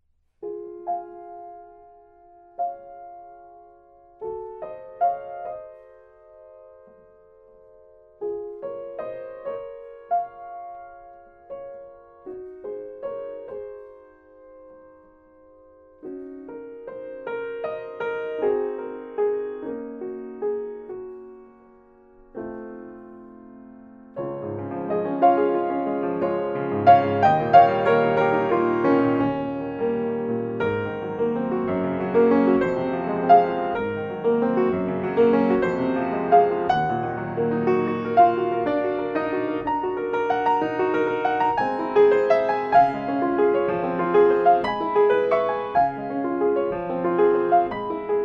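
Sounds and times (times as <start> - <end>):
piano recorded with AT4050 microphone: 0.4 - 48.2.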